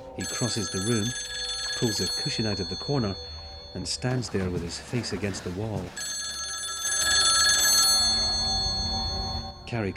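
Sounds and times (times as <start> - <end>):
telephone bell ringing: 0.2 - 4.0, 5.9 - 9.9
speech: 0.2 - 6.2, 9.7 - 9.9.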